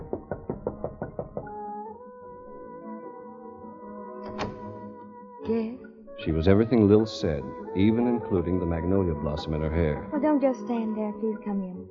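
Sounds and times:
quick knocks on a wooden dressing room door: 0.0s - 1.6s
soft steady musical hum: 5.5s - 11.8s
speech: 5.5s - 11.8s.

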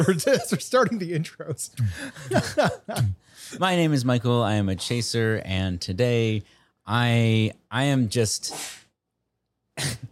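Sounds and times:
laughter: 0.0s - 3.2s
speech: 0.0s - 8.8s, 9.8s - 10.1s
sneeze: 8.5s - 8.9s.

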